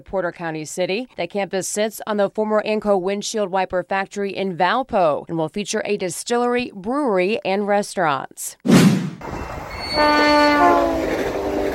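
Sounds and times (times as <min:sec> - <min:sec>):
speech: 0:00.0 - 0:11.3
commuter train leaving a station in Northwest Indiana: 0:09.2 - 0:11.7
loud sustained commuter train horn blast: 0:09.8 - 0:11.7.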